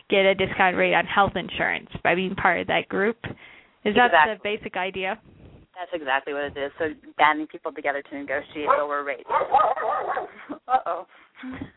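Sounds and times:
speech: 0:00.1 - 0:11.7
foster dog barking and yipping excitedly: 0:08.6 - 0:10.4.

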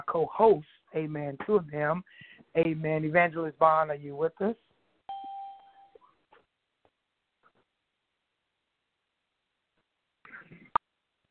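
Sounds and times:
speech: 0:00.1 - 0:04.7
conference call entry tone chime: 0:05.1 - 0:06.0.

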